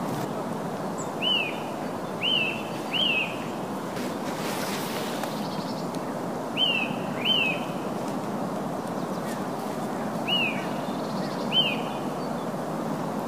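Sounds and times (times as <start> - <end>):
constant rushing noise: 0.0 - 13.2
Eurasian nuthatch Sitta europaea calling with short slurred whistles: 1.2 - 3.5, 6.6 - 7.8, 10.2 - 12.0.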